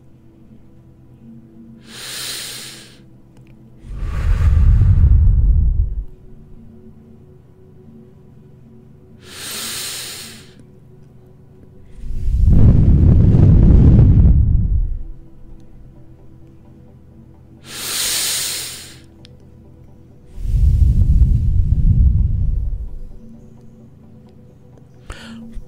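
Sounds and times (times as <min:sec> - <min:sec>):
deep breaths in and out: 0:01.8 - 0:03.0, 0:03.8 - 0:06.5, 0:09.2 - 0:10.6, 0:11.8 - 0:15.2, 0:17.6 - 0:19.1, 0:20.3 - 0:23.2.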